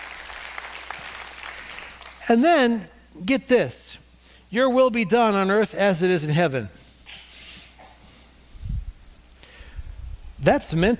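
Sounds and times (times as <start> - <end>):
crowd applauding: 0.0 - 2.2
speech: 2.3 - 6.8, 10.4 - 10.9.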